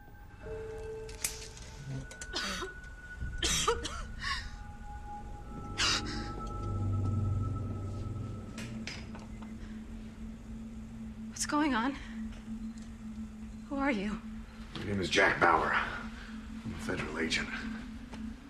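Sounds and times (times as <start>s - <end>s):
low steady hum: 0.0s - 18.4s
woman coughing and spluttering on waking: 3.4s - 4.1s
speech: 11.5s - 12.1s, 13.9s - 14.3s, 14.9s - 15.9s, 16.8s - 17.8s.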